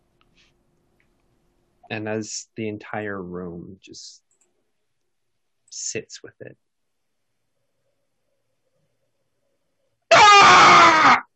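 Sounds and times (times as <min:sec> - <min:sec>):
speech: 0:01.9 - 0:04.2, 0:05.8 - 0:06.6
person screaming outside: 0:10.1 - 0:11.3.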